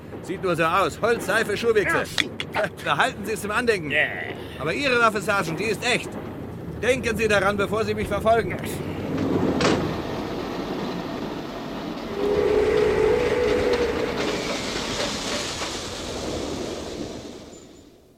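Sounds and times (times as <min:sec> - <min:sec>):
train rolling along the tracks: 0:00.0 - 0:18.1
speech: 0:00.3 - 0:08.9
high squeal of train: 0:10.3 - 0:18.1.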